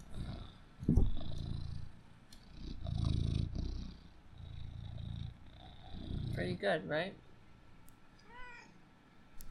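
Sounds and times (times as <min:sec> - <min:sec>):
cat purring: 0:00.0 - 0:06.8
speech: 0:06.4 - 0:07.2.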